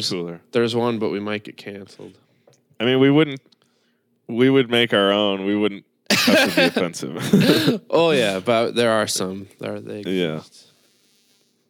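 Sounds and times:
speech: 0.0s - 2.2s, 2.8s - 3.5s, 4.3s - 10.7s
laughter: 6.1s - 8.5s
faint hiss: 7.3s - 11.6s
rough droning buzz: 8.1s - 11.6s.

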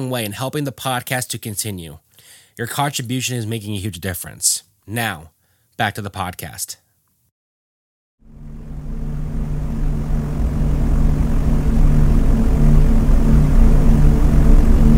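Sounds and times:
speech: 0.0s - 6.8s
propeller aircraft engines droning inside the cabin: 8.5s - 14.9s.

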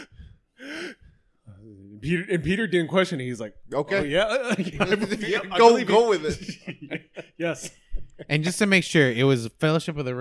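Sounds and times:
person gasping for air after being stabbed: 0.0s - 1.7s, 5.1s - 5.6s
speech: 2.0s - 10.1s
laughter: 3.9s - 8.7s.

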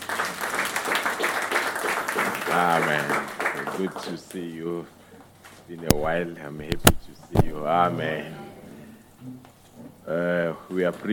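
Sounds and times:
audience applauding: 0.0s - 4.4s
speech: 2.6s - 5.0s, 5.7s - 8.5s, 9.2s - 11.1s.

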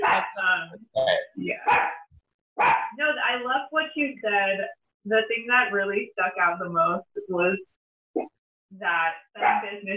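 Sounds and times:
dog barking loudly: 0.0s - 0.4s, 1.6s - 3.0s, 9.4s - 9.7s
speech: 0.2s - 1.8s, 3.4s - 9.9s.

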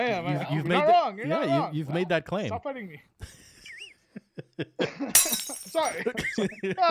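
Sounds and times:
speech: 0.0s - 3.4s, 4.6s - 6.8s
glass bottle shattering: 5.2s - 6.0s
glass shards tinkling: 5.2s - 6.0s.

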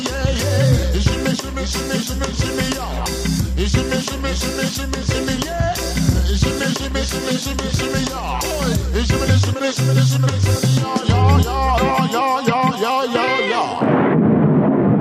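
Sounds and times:
loud bass-heavy song with vocals: 0.0s - 13.9s
booming explosion: 13.8s - 14.9s.

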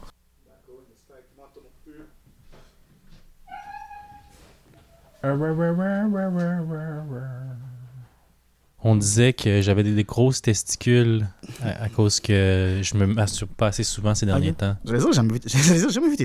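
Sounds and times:
speech: 1.0s - 2.7s, 5.2s - 7.6s, 8.8s - 16.2s
old dog whining and moaning for attention: 3.4s - 5.3s.

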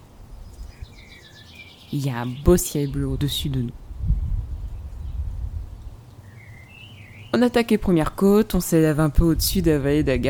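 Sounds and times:
birdsong in cultivated fields: 0.0s - 9.2s
low rumble of wind: 0.0s - 10.2s
speech: 1.9s - 3.8s, 7.4s - 10.2s.

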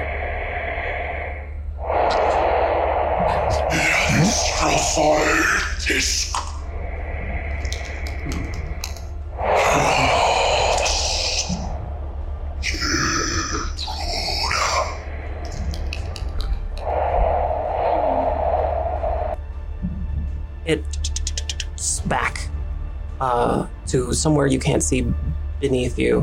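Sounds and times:
very large creature breathing and snorting: 0.0s - 19.5s
constant low drone: 0.0s - 23.1s
speech: 5.0s - 6.4s, 24.2s - 26.2s.

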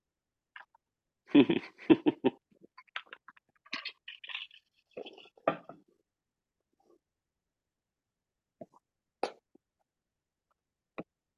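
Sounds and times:
laughter: 1.3s - 2.4s
chewing crunchy snacks: 2.8s - 5.4s.

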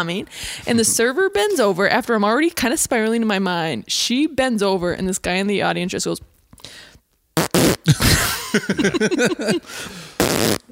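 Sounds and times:
speech: 0.0s - 6.9s, 8.5s - 10.7s
man in an audience blowing a wet sputtering raspberry with his mouth: 7.4s - 8.4s, 9.3s - 10.7s
laughter: 7.9s - 10.0s.

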